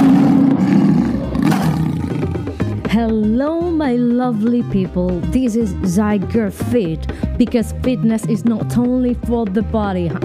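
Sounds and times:
big cat deep rumbling roar: 0.0s - 2.6s
speech: 3.0s - 10.2s.

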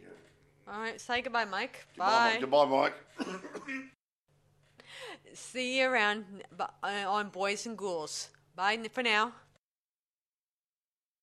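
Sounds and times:
speech: 0.7s - 4.0s, 5.0s - 9.4s
raspy coughing: 3.2s - 4.0s.

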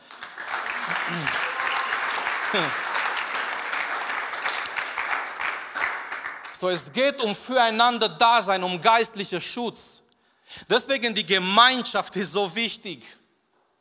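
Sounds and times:
audience applause: 0.0s - 6.6s
brief voices or cheers: 0.6s - 3.8s
speech: 1.1s - 1.4s, 2.5s - 2.9s, 6.6s - 13.2s.

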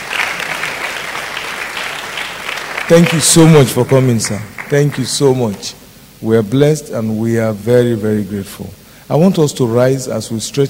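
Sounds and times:
audience applauding for guest speaker: 0.0s - 5.8s
speech: 2.9s - 10.6s.

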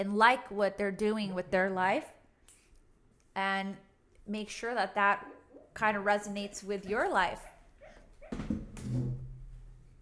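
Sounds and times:
speech: 0.0s - 2.2s, 3.4s - 7.5s
dog whimpering softly in its sleep: 7.8s - 8.4s.

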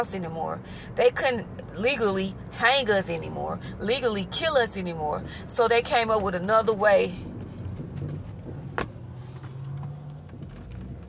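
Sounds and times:
speech: 0.0s - 7.3s
car engine rumbling while pulling out: 0.0s - 11.0s
road noise: 0.0s - 11.0s.

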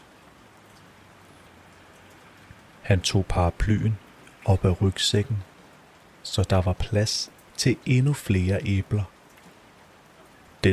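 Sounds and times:
steady rain: 0.0s - 10.7s
speech: 2.8s - 5.5s, 6.2s - 9.1s.

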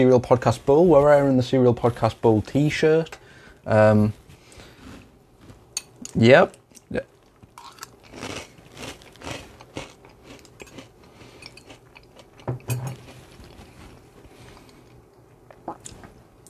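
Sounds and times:
speech: 0.0s - 4.2s, 6.1s - 7.1s
crunchy snacks being chewed: 6.8s - 16.0s.

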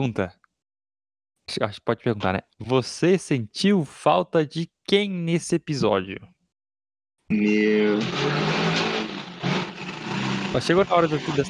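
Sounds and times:
speech: 0.0s - 0.4s, 1.5s - 6.3s, 7.3s - 9.0s, 10.5s - 11.4s
motor engine droning and revving on the street outside: 7.5s - 11.4s.

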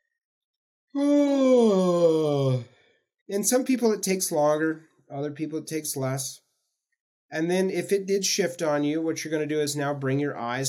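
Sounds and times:
speech: 0.9s - 1.6s, 3.3s - 6.4s, 7.3s - 10.6s
long drawn-out yawn: 1.0s - 2.7s.

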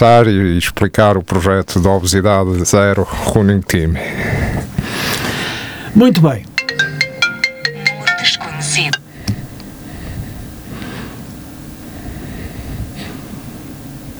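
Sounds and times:
speech: 0.0s - 5.3s, 6.0s - 6.5s
telephone ringing with electronic tone: 6.6s - 9.1s.

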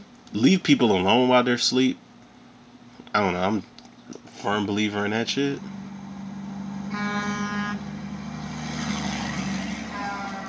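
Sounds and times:
speech: 0.3s - 2.0s, 3.1s - 5.8s
low engine rumble: 4.4s - 10.4s
traffic noise: 5.6s - 10.4s
car horn honk: 6.9s - 8.0s.

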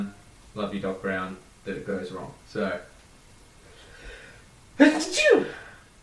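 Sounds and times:
speech: 0.0s - 2.9s
loud sneeze: 4.8s - 5.8s.

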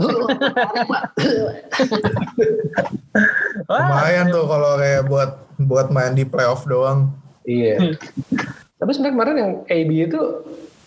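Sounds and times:
speech: 0.0s - 3.0s, 3.7s - 10.6s
loud run of harsh coughing: 0.0s - 4.2s
laughter: 0.0s - 7.0s
throat-clearing rasps: 1.2s - 4.2s.

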